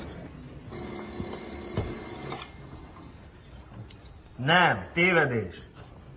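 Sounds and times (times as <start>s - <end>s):
telephone ringing: 0.7s - 3.0s
speech: 4.4s - 5.7s.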